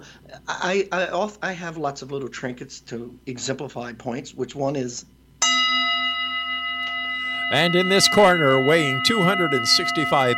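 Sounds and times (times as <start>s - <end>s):
speech: 0.0s - 5.2s, 7.5s - 10.3s
hand bell ringing: 5.4s - 10.3s.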